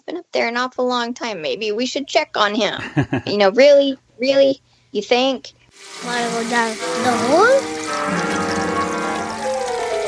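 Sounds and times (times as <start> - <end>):
speech: 0.1 - 8.3
laughter: 2.8 - 3.3
water pouring from an overflowing toilet onto the floor: 5.8 - 10.0.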